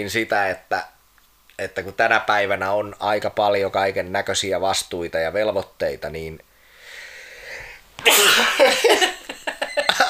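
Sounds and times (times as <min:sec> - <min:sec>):
speech: 0:00.0 - 0:01.0, 0:01.6 - 0:06.5, 0:08.0 - 0:09.2
faint strained breath: 0:06.6 - 0:07.8
long held-back sneeze bursting out: 0:08.0 - 0:08.9.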